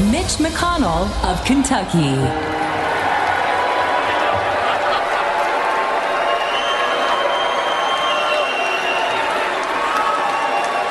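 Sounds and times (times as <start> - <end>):
speech: 0.1 - 2.6
large crowd booing at a political rally: 1.3 - 10.8
laughter: 3.2 - 6.4.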